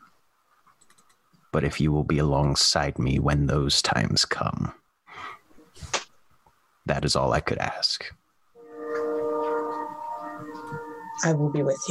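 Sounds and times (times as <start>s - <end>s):
speech: 1.5s - 4.8s, 6.9s - 8.2s, 11.2s - 11.8s
train horn: 8.6s - 11.6s.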